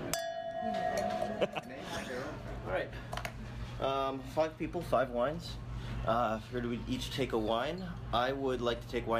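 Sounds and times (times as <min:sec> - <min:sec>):
wine glasses clinking in a toast: 0:00.1 - 0:02.0
speech: 0:01.4 - 0:03.2, 0:03.8 - 0:09.1.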